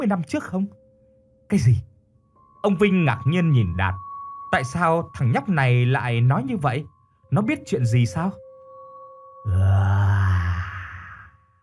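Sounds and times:
speech: 0.0s - 0.8s, 1.5s - 1.9s, 2.6s - 8.4s, 9.4s - 10.0s
faint steady tone: 0.0s - 11.6s
many voices groaning together: 9.5s - 11.3s.

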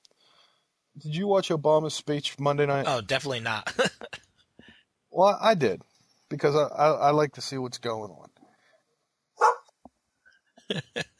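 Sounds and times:
speech: 1.0s - 4.2s, 5.2s - 8.3s, 10.7s - 11.1s
laughter: 2.9s - 4.2s, 10.7s - 11.0s
dogs barking at someone entering house: 9.4s - 9.7s.

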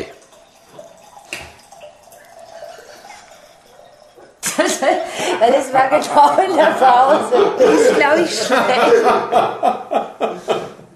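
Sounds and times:
drink being poured and topped up: 0.0s - 5.3s
laughter: 4.4s - 10.8s
speech: 4.8s - 10.0s.

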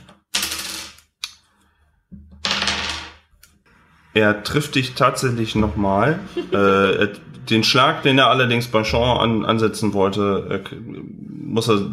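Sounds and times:
dice rattling across a hard tabletop: 0.3s - 1.0s, 2.4s - 3.2s
speech: 4.2s - 11.9s
laughter: 6.0s - 7.1s.

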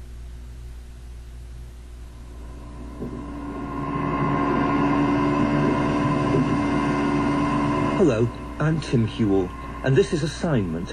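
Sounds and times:
pump droning as it moves a dark gloopy substance: 2.2s - 10.9s
speech: 8.0s - 10.9s.

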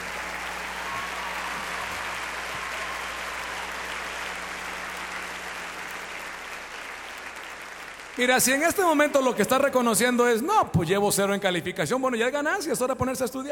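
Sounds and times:
concert audience applause: 0.0s - 9.8s
speech: 8.2s - 13.5s.

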